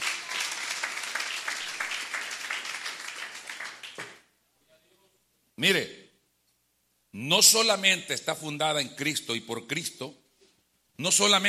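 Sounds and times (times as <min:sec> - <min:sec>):
audience applauding: 0:00.0 - 0:04.3
speech: 0:05.6 - 0:06.0, 0:07.2 - 0:10.2, 0:11.0 - 0:11.4.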